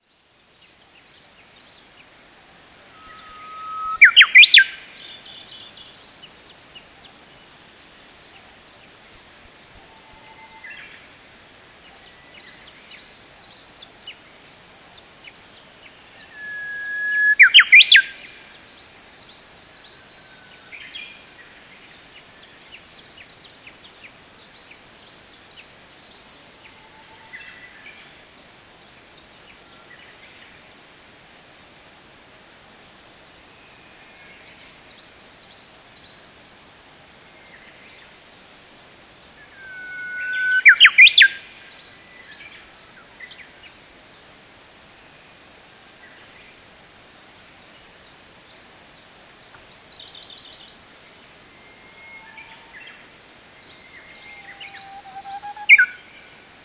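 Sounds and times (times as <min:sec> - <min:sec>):
bush warbler calling: 0:03.0 - 0:04.8, 0:16.3 - 0:18.2, 0:39.5 - 0:41.6, 0:53.8 - 0:56.6.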